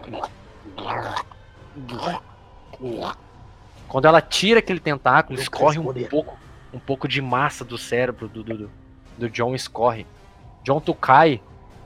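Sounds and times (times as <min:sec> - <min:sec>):
speech: 0:00.1 - 0:03.2, 0:03.9 - 0:11.5
voice imitating a creature sucking and swallowing with wet gurgling gulps: 0:00.7 - 0:02.2.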